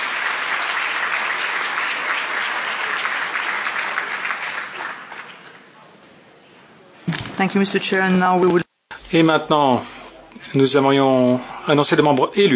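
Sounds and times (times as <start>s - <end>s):
sizable audience applauding newly elected vice-presidents: 0.0s - 5.7s
speech: 7.4s - 9.9s, 10.5s - 12.5s.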